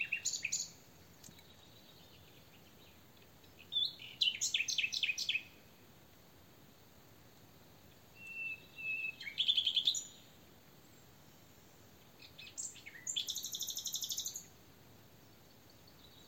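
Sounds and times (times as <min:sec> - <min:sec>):
common nightingale Luscinia megarhynchos singing: 0:00.0 - 0:05.7, 0:07.8 - 0:14.6, 0:15.2 - 0:16.2.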